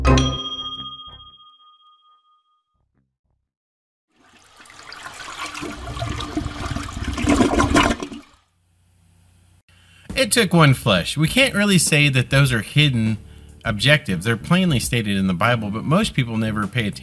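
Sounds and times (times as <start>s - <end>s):
bright two-tone chime: 0.2s - 2.6s
toilet flushing: 4.1s - 8.4s
speech: 10.3s - 17.0s.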